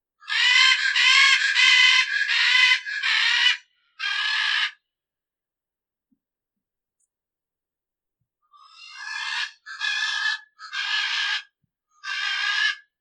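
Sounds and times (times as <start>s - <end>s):
military macaw song: 0.2s - 4.8s, 8.5s - 12.9s.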